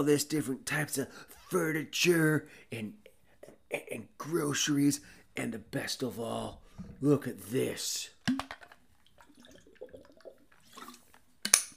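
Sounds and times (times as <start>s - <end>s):
speech: 0.0s - 3.0s, 3.7s - 8.6s
faint dripping: 8.2s - 11.6s.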